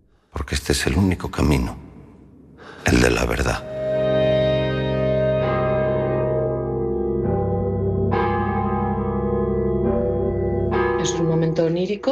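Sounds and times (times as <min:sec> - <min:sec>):
speech: 0:00.5 - 0:01.9, 0:02.9 - 0:03.7, 0:11.2 - 0:12.0
distorted church bells tolling: 0:03.6 - 0:12.0.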